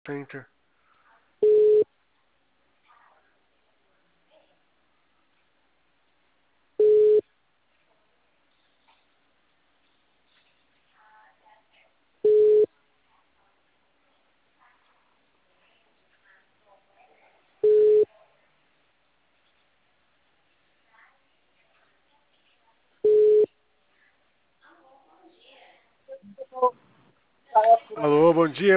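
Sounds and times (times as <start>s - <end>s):
speech: 0.0s - 0.6s, 28.0s - 28.7s
telephone tone beeps after a dropped call: 1.4s - 1.8s, 6.8s - 7.2s, 12.2s - 12.7s, 17.6s - 18.1s, 23.0s - 23.5s.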